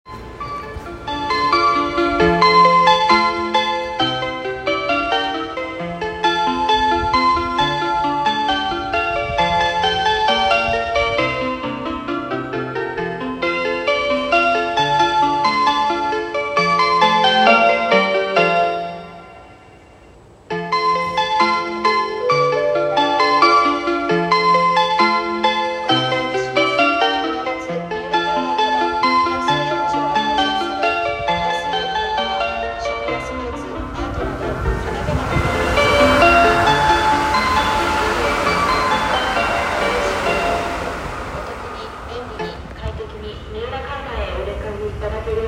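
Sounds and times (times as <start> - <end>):
train approaching: 0.0 - 45.4.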